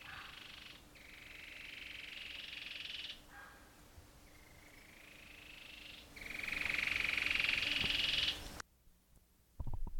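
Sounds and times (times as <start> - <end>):
Cherrie's antwren pulsed trills: 0.0 - 3.6, 4.2 - 8.6.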